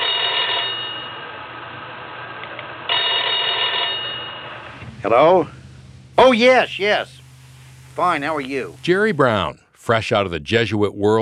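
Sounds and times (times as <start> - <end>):
telephone ringing with bright buzzy electronic trill: 0.0 - 1.3, 2.9 - 4.7
speech: 5.0 - 5.6, 6.2 - 7.2, 8.0 - 11.2.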